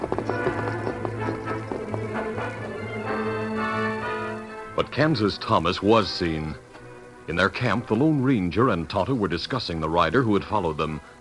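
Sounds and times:
horse hooves galloping carrying riders into the hills: 0:00.0 - 0:06.5
sustained tone: 0:00.0 - 0:11.1
speech: 0:04.8 - 0:06.6, 0:07.3 - 0:11.1.

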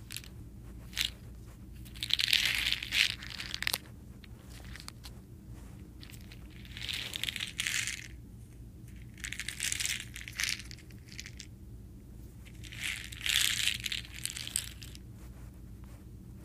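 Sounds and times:
steady low hum: 0:00.0 - 0:16.4
crunching of soda candies: 0:01.8 - 0:05.1, 0:06.0 - 0:08.2, 0:08.9 - 0:11.5, 0:12.5 - 0:15.0.

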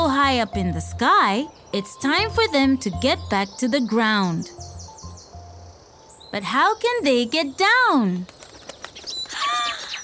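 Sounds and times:
birds calling in overlapping warbling notes: 0:00.0 - 0:10.0
speech: 0:00.3 - 0:04.7, 0:06.3 - 0:08.4
birds flapping wings: 0:08.1 - 0:10.0.

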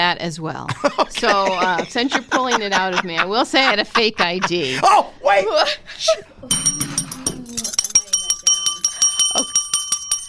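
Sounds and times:
speech: 0:00.1 - 0:06.8
laughter: 0:00.7 - 0:07.7
small bell ringing: 0:06.5 - 0:10.2.

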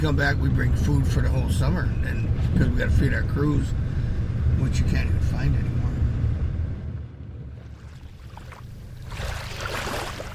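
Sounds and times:
speech: 0:00.0 - 0:03.9, 0:04.6 - 0:05.8
wind: 0:00.0 - 0:10.3
motorboat engine droning across a bay toward Chignik Lagoon: 0:00.6 - 0:10.3
water spray splashing: 0:08.0 - 0:10.3.

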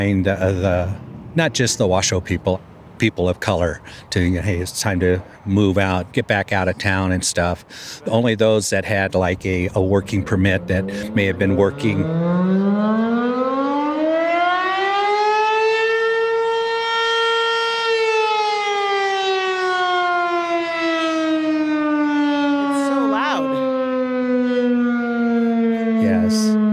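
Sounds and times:
speech: 0:00.0 - 0:13.4
town sundown siren in Minden, Nevada, wailing: 0:09.6 - 0:26.7.

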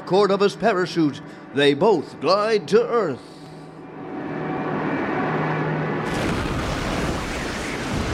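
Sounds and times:
plane engine droning: 0:00.0 - 0:08.1
speech: 0:00.1 - 0:03.4
dense sustained rumbling roar: 0:06.0 - 0:08.1
plane crash and explosion: 0:06.0 - 0:08.1.

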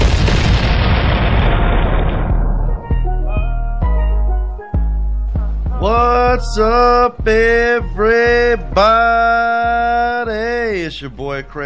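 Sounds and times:
cannon fired to celebrate a touchdown: 0:00.0 - 0:03.4
punchy music with sharp hits: 0:02.0 - 0:10.4
speech: 0:06.4 - 0:11.6.

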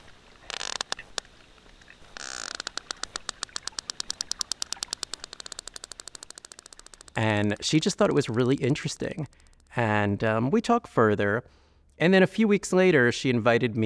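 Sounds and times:
hissy bursts of noise: 0:00.0 - 0:08.0
sperm whale echolocation clicks underwater: 0:00.0 - 0:10.6
speech: 0:07.2 - 0:13.8.

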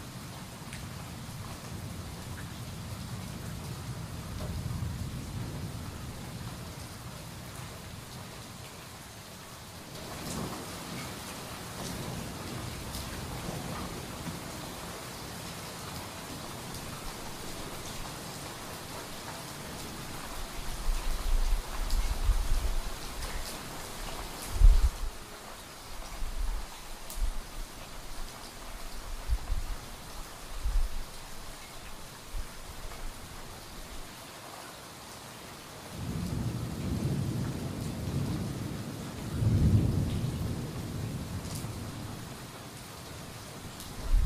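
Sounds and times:
soft rain falling during a thunderstorm: 0:00.0 - 0:44.2
low rumbles of thunder: 0:36.0 - 0:42.2, 0:44.0 - 0:44.2.

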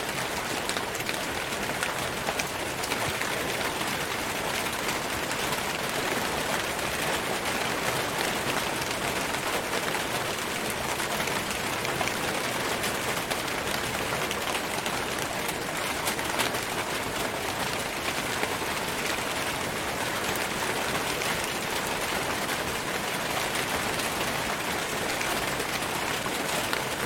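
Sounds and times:
hard rain drumming on a tin roof: 0:00.0 - 0:27.0.

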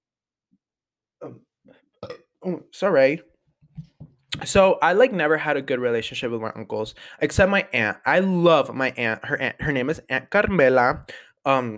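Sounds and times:
person burping: 0:01.2 - 0:02.4
speech: 0:02.4 - 0:03.3, 0:04.4 - 0:11.7.

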